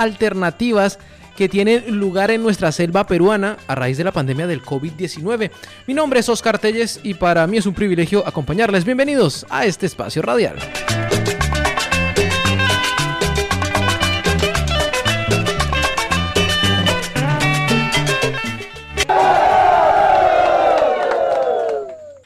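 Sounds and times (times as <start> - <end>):
speech: 0.0 - 11.0
rhythmic music with a steady beat: 10.6 - 19.2
crowd of Amazonian indigenous people shouting a collective cry: 19.0 - 22.1.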